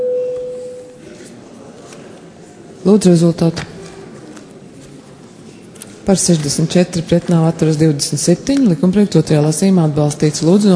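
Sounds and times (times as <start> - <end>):
bell signal tone calling members to a parliamentary vote: 0.0 - 1.0
speech: 2.8 - 3.7, 6.1 - 10.7.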